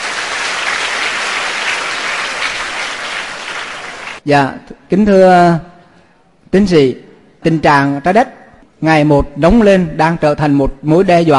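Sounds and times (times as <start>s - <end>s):
crowd applauding: 0.0s - 4.2s
speech: 4.2s - 5.7s, 6.5s - 11.3s.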